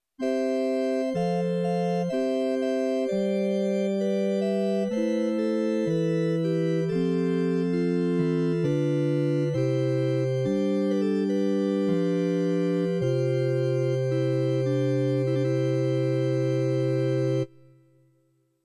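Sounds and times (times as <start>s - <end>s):
pipe organ: 0.2s - 17.6s.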